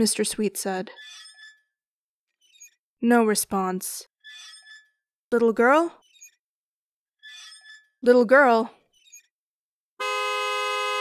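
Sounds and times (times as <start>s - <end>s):
speech: 0.0s - 1.2s, 3.0s - 4.5s, 5.3s - 6.0s, 8.0s - 8.8s
ice cream truck horn honking: 10.0s - 10.9s.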